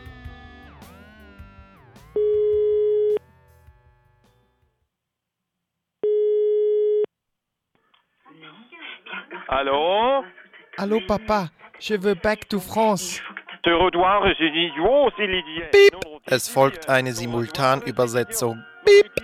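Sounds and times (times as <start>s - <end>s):
telephone ringing tone before a call: 2.2s - 3.2s, 6.0s - 7.1s, 18.9s - 19.2s
speech: 9.5s - 19.2s.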